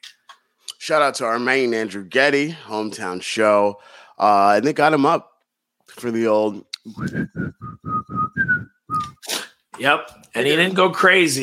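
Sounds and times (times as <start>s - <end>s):
speech: 0.8s - 5.3s, 5.9s - 7.7s, 9.8s - 11.4s
person whistling a short tune: 7.0s - 9.2s.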